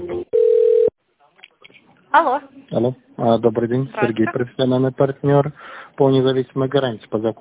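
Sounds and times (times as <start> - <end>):
telephone tone during call transfer: 0.4 - 0.9
speech: 2.1 - 7.3.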